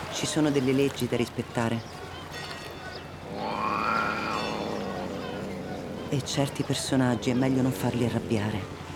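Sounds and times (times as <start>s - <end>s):
speech: 0.2s - 2.0s, 6.1s - 8.9s
stray cats meowing: 3.1s - 8.8s.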